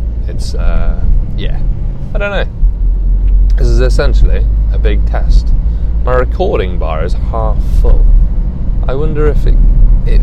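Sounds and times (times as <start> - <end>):
car engine idling heard from inside the cabin: 0.0 - 10.2
speech: 0.3 - 2.6, 3.6 - 8.2, 8.9 - 10.2.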